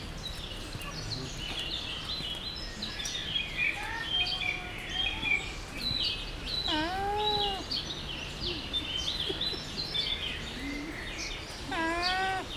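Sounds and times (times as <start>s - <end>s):
birds chirping and twittering: 0.3s - 12.5s
captive llama humming call at a zoo: 6.7s - 7.7s, 11.7s - 12.5s.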